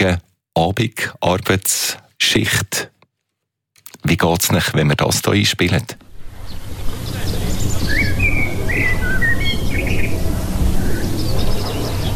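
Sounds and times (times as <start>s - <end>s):
speech: 0.0s - 2.9s, 4.0s - 6.1s
birdsong: 6.1s - 12.1s.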